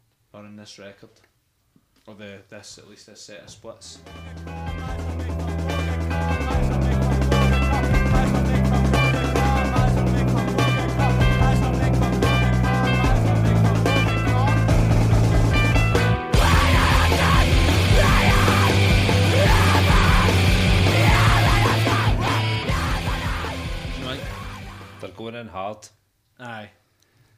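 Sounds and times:
speech: 0:00.4 - 0:01.3, 0:02.1 - 0:05.1, 0:25.7 - 0:26.8
screamo riff of distorted guitars: 0:04.0 - 0:25.1
harsh screamed vocals: 0:16.3 - 0:25.0.

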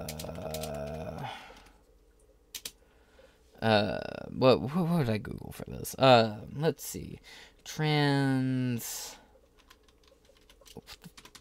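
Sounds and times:
typing on a wonky computer keyboard: 0:00.0 - 0:01.0, 0:02.5 - 0:02.8, 0:09.6 - 0:11.3
speech: 0:03.6 - 0:09.2, 0:10.8 - 0:11.1.

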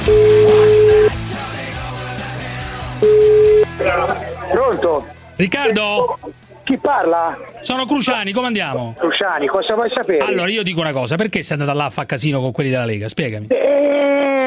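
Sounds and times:
telephone tones while placing a call: 0:00.1 - 0:01.1, 0:03.0 - 0:03.7
speech: 0:04.9 - 0:14.3.

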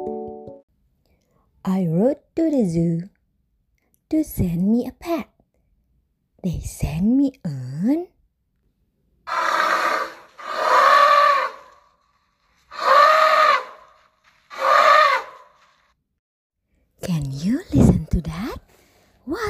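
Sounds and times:
speech: 0:01.8 - 0:03.1, 0:04.1 - 0:05.3, 0:06.4 - 0:08.2, 0:19.3 - 0:19.4
loud harsh elephant trumpet: 0:09.3 - 0:15.8
drawn-out voice-like calls: 0:09.3 - 0:15.9.

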